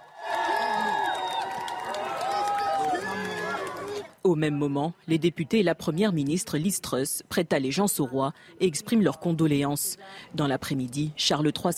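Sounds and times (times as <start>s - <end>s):
large crowd cheering and calling out: 0.0s - 4.2s
speech: 4.2s - 11.7s.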